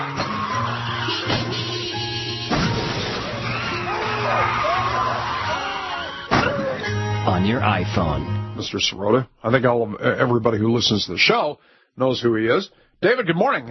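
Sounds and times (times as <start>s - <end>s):
tires screeching and squealing as vehicles skid: 0.0s - 6.8s
crashing impacts and metallic bangs of a multi-car collision: 0.1s - 1.7s, 2.3s - 4.1s, 6.2s - 6.8s
speech: 7.4s - 13.6s.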